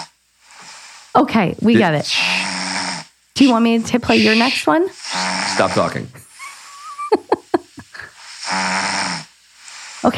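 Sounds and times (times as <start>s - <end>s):
recording of person snoring played from a phone: 0.0s - 1.0s, 1.8s - 6.9s, 8.0s - 10.1s
quiet breathing: 0.0s - 2.6s, 3.8s - 6.8s, 9.5s - 10.1s
speech: 1.2s - 2.5s, 3.4s - 6.2s
laughter: 6.4s - 8.1s.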